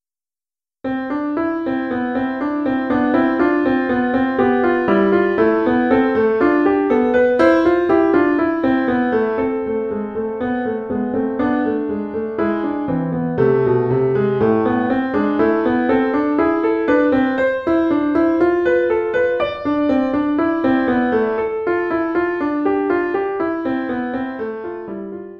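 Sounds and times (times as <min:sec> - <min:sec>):
intermediate piano solo: 0:00.8 - 0:25.3.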